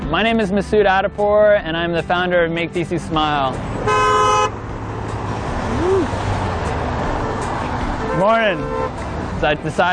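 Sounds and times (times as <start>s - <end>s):
rumbling traffic noise at a busy intersection: 0.0s - 9.9s
speech: 0.1s - 4.0s, 8.2s - 9.9s
car horn blast at a busy intersection: 3.8s - 4.6s, 8.1s - 9.0s.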